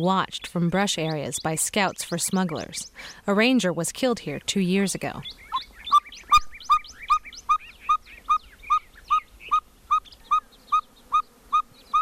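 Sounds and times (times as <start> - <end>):
speech: 0.0 - 5.4
birds chirping and trilling in a desert canyon: 0.2 - 12.0
bird whistling toots at sunrise in a desert canyon: 5.2 - 12.0.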